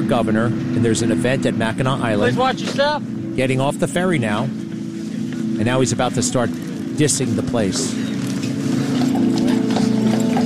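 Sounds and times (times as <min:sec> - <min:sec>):
steady low rumbling hum: 0:00.0 - 0:10.4
speech: 0:00.1 - 0:04.6, 0:05.6 - 0:08.1
horse hooves clip-clopping on a hard street on Mackinac Island: 0:06.4 - 0:10.4.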